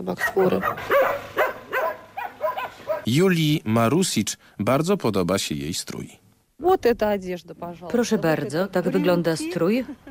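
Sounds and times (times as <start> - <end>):
speech: 0.0 - 1.3, 3.0 - 10.1
dogs barking: 0.1 - 3.2.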